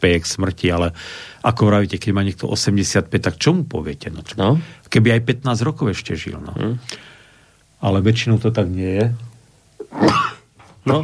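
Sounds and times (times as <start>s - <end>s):
speech: 0.0s - 7.1s, 7.8s - 9.3s, 9.9s - 11.0s
person sneezing: 9.8s - 10.5s.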